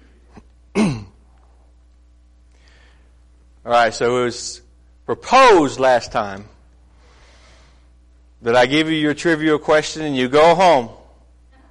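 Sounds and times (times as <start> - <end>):
single short raspy cough or throat-clearing: 0.7 - 1.2
faint breath: 2.5 - 3.2, 6.9 - 8.0
speech: 3.6 - 6.6, 8.4 - 11.0.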